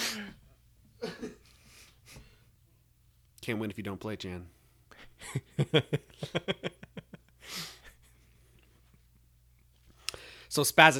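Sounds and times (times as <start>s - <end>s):
person sneezing: 0.0s - 0.4s
speech: 3.4s - 4.6s, 5.2s - 6.7s, 10.6s - 10.9s.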